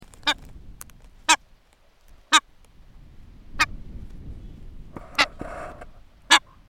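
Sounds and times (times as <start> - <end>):
masked booby calling: 0.2 - 0.4, 1.2 - 1.4, 2.2 - 2.5, 5.0 - 6.6.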